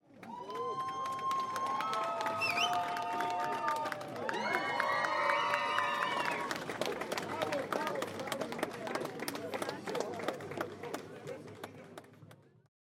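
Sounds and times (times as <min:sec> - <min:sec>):
crowd of people applauding at a street event: 0:00.0 - 0:12.5.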